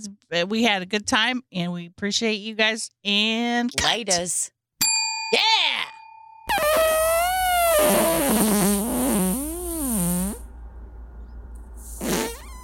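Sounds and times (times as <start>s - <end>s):
speech: 0.0s - 4.6s, 5.3s - 5.8s
long wavering fart sound effect: 6.5s - 10.5s, 11.8s - 12.6s.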